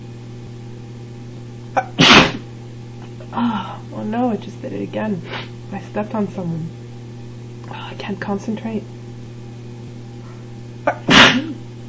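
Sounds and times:
low steady hum: 0:00.0 - 0:11.8
speech: 0:01.8 - 0:02.1, 0:03.3 - 0:06.8, 0:08.0 - 0:09.0
person sneezing: 0:01.8 - 0:02.4, 0:10.9 - 0:11.6.

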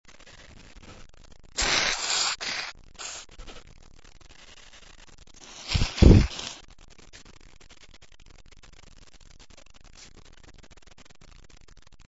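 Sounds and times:
man blowing: 0:01.6 - 0:03.3, 0:05.4 - 0:06.6.

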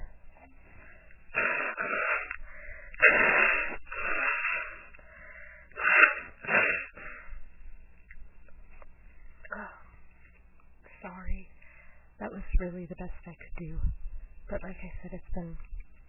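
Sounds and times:
person blowing their nose: 0:01.3 - 0:02.4, 0:03.0 - 0:04.9, 0:05.8 - 0:07.3
speech: 0:12.6 - 0:15.8.

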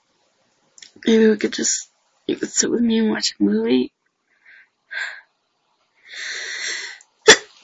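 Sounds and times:
speech: 0:01.0 - 0:04.0
person sneezing while ill: 0:07.3 - 0:07.6.

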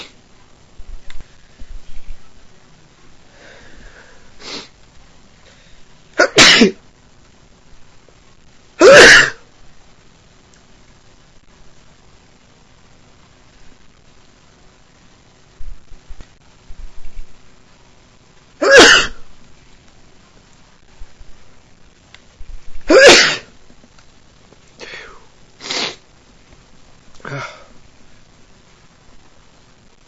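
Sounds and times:
person sniffing: 0:03.4 - 0:04.7, 0:24.8 - 0:26.0
person sneezing from allergies: 0:06.2 - 0:06.8, 0:08.8 - 0:09.4, 0:22.8 - 0:23.5, 0:24.8 - 0:26.0, 0:27.2 - 0:27.7.

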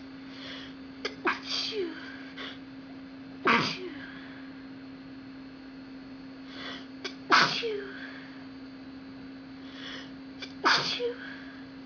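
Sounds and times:
woman sneezing: 0:01.1 - 0:02.6, 0:03.4 - 0:04.2, 0:07.0 - 0:08.1, 0:10.4 - 0:11.5.

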